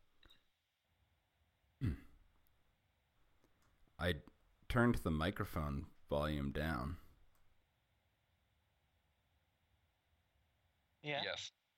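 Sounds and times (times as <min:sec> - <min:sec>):
faint room noise: 0:00.0 - 0:11.7
throat clearing: 0:01.8 - 0:02.3
speech: 0:04.0 - 0:07.0, 0:11.0 - 0:11.6.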